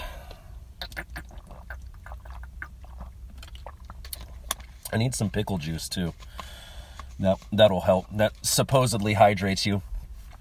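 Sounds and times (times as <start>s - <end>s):
person gulping water: 0.0s - 4.7s
speech: 4.9s - 6.4s, 7.2s - 9.9s.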